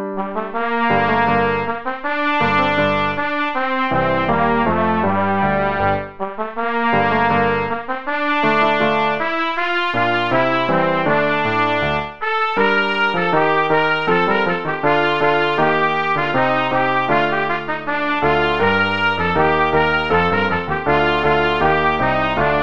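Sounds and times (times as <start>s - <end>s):
trumpet playing without dynamics: 0.1s - 22.6s.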